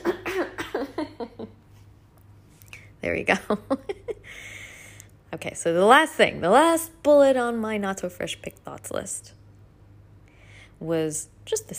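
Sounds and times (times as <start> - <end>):
person clearing throat: 0.0 - 1.4
speech: 3.0 - 4.0, 5.4 - 9.4, 10.8 - 11.7.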